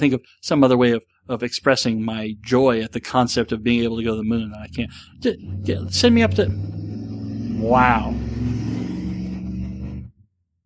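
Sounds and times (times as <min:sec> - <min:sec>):
speech: 0:00.0 - 0:06.9, 0:07.6 - 0:08.6
loud rumbling vehicle engine revving hard: 0:03.0 - 0:10.2.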